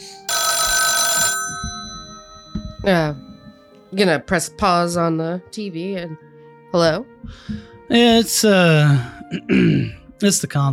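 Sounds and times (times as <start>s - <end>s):
telephone bell ringing: 0.0s - 3.8s
speech: 2.8s - 3.2s, 3.9s - 10.7s.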